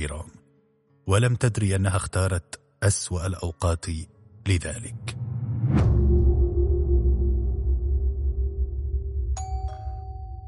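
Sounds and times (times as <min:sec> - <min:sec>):
speech: 0:00.0 - 0:00.4, 0:01.1 - 0:05.8
low steady rumbling drone: 0:04.3 - 0:10.3
doorbell ringing in a two-storey house: 0:09.4 - 0:10.4.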